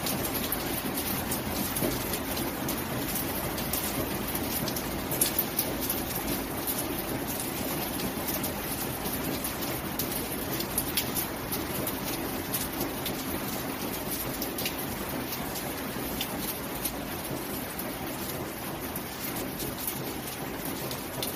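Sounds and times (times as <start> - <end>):
rain on the tin roof of a remote cabin: 0.0 - 21.3.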